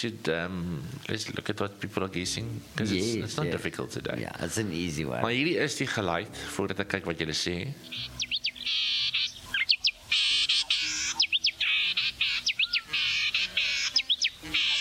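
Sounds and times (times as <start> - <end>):
speech: 0.0 - 8.4
grating shrill bird call with chirps and buzzing bursts: 7.8 - 14.7.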